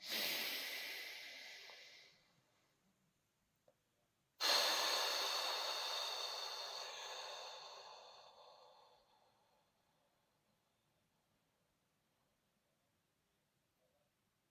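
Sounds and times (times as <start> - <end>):
loud exhale through mouth: 0.0 - 2.2, 4.4 - 9.1
deep inhale: 0.0 - 2.3, 4.4 - 10.0.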